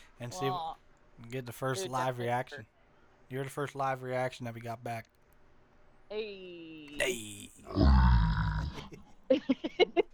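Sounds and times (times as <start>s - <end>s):
speech: 0.2s - 5.2s, 6.1s - 8.1s, 9.3s - 10.1s
low rasping burp: 7.7s - 8.9s.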